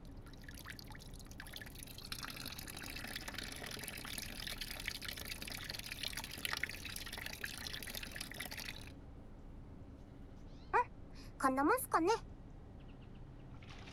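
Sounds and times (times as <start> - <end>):
hot water poured slowly into a bucket: 0.3 - 8.9
speech: 11.4 - 12.3.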